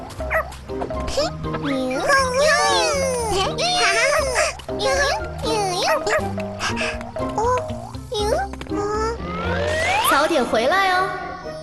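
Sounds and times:
music: 0:00.0 - 0:11.6
small puppy barking and yipping: 0:00.2 - 0:00.5, 0:05.7 - 0:06.8
speech: 0:00.7 - 0:07.5, 0:10.2 - 0:11.2.

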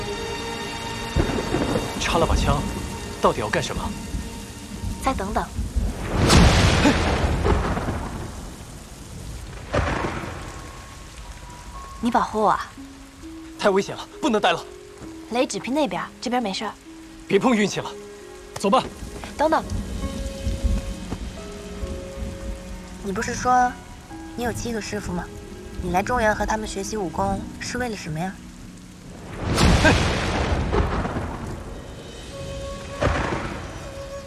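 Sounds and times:
steady rain: 0:00.0 - 0:34.2
loud roll of thunder: 0:00.9 - 0:12.2, 0:18.7 - 0:28.1, 0:29.0 - 0:34.2
speech: 0:02.0 - 0:04.0, 0:05.0 - 0:05.6, 0:06.8 - 0:07.1, 0:12.0 - 0:12.8, 0:13.6 - 0:18.0, 0:18.6 - 0:19.8, 0:23.1 - 0:23.8, 0:24.4 - 0:28.4.

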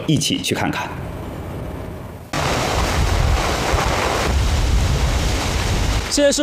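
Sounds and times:
speech: 0:00.0 - 0:01.1, 0:06.2 - 0:06.4
heavy rain during typhoon at Tufu Bay Lingshui: 0:02.3 - 0:06.4
strong typhoon wind buffeting microphone at Tufu Bay Lingshui: 0:02.4 - 0:06.1.

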